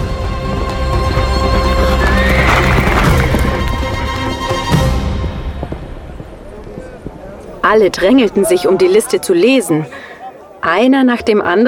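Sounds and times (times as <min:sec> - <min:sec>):
horse hooves clattering in a fast gallop: 0:00.4 - 0:09.6
horse whinnying as its rider mounts: 0:01.7 - 0:03.7
speech: 0:07.7 - 0:10.0, 0:10.6 - 0:11.6.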